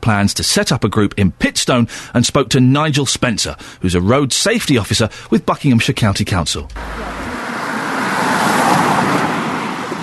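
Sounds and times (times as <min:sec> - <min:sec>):
speech: 0:00.0 - 0:07.3
cars passing by in village centre: 0:06.7 - 0:10.0.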